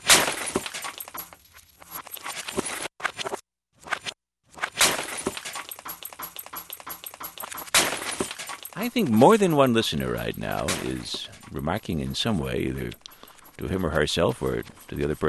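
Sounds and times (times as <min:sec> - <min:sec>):
glass breaking and shattering in a sound art piece: 0:00.0 - 0:01.4, 0:04.7 - 0:06.2, 0:07.0 - 0:08.8
tinkling glass shards: 0:00.0 - 0:02.6, 0:05.0 - 0:09.7
speech: 0:08.8 - 0:13.0, 0:13.6 - 0:15.2.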